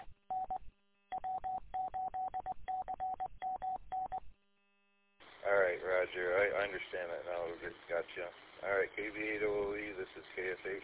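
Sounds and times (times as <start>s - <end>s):
telephone keypad dialing tones during an amateur radio exchange: 0.3s - 4.2s
speech: 6.0s - 10.8s.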